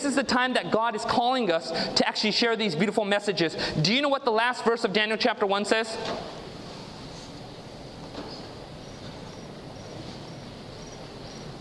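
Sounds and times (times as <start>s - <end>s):
speech: 0.0s - 6.4s
cricket chirping: 8.4s - 11.5s.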